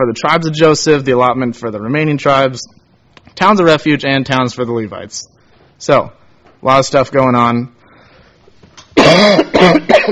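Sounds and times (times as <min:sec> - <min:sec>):
speech: 0:00.0 - 0:07.8, 0:09.0 - 0:10.1
person with a cold coughing: 0:09.0 - 0:10.1.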